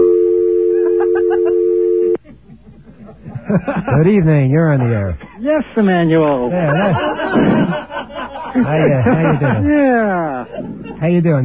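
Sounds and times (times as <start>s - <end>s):
loud electronic telephone-line connecting tone: 0.0s - 2.2s
faint low noise: 0.0s - 11.4s
laughter: 2.2s - 5.6s, 6.3s - 11.2s
speech: 3.5s - 11.4s.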